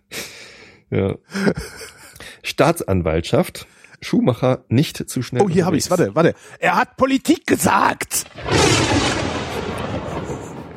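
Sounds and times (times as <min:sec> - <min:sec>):
speech: 0:00.9 - 0:09.0
laughter: 0:01.3 - 0:02.2, 0:09.9 - 0:10.7
loud rumbling thunderclap: 0:08.2 - 0:10.7.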